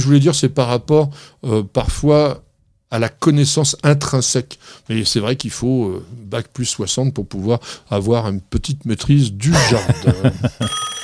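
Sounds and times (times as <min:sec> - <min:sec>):
speech: 0:00.0 - 0:11.0
laughter: 0:09.5 - 0:10.7
telephone bell ringing with a bright metallic tone: 0:10.6 - 0:11.0.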